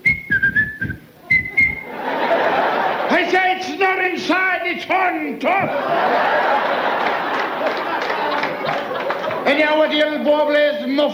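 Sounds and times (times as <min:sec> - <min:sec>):
referee whistle blasts: 0:00.0 - 0:01.9
laughter: 0:01.2 - 0:03.8, 0:05.5 - 0:10.1
speech: 0:03.2 - 0:08.2, 0:09.5 - 0:11.1.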